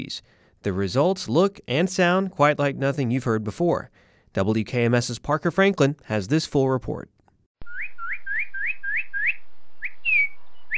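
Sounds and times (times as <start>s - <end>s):
speech: 0.0s - 7.2s
northern cardinal calling: 7.6s - 10.7s.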